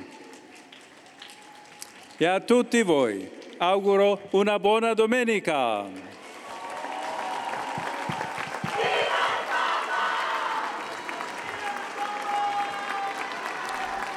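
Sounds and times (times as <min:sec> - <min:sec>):
large outdoor crowd clapping in a square: 0:00.0 - 0:02.3, 0:05.9 - 0:14.1
speech: 0:02.2 - 0:06.1
large outdoor crowd shouting in a square: 0:06.7 - 0:14.1.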